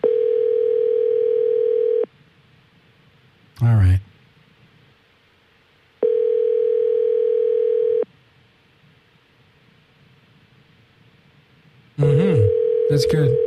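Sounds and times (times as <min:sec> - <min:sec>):
telephone dial tone: 0:00.0 - 0:02.1, 0:06.0 - 0:08.0, 0:12.4 - 0:13.4
faint hiss: 0:00.0 - 0:13.4
speech: 0:13.0 - 0:13.4.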